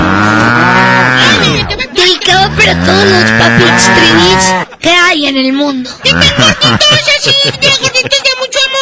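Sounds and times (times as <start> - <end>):
cow mooing: 0.0 - 1.7, 2.4 - 4.7
laughter: 1.2 - 2.8, 5.9 - 8.8
speech: 2.5 - 8.6.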